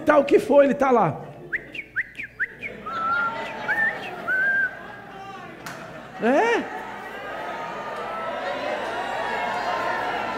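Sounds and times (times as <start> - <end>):
speech: 0.0 - 1.2, 6.2 - 6.8
laughter: 1.4 - 10.3
person whistling in imitation of birdsong: 1.5 - 4.7.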